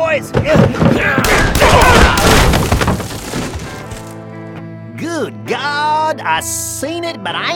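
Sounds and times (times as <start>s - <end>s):
speech: 0.2s - 1.2s, 6.2s - 7.5s
pistol gunshots in a gunfight: 1.2s - 3.0s.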